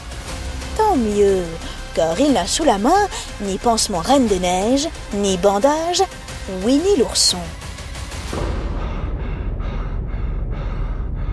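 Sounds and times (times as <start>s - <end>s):
speech: 0.9s - 7.6s
heavy rapid out-of-breath panting: 1.3s - 3.7s, 8.3s - 11.3s.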